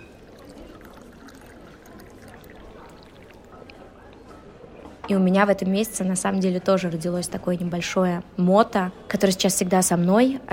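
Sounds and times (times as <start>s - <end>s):
water pouring to drink: 0.0s - 4.0s
speech: 5.1s - 10.5s.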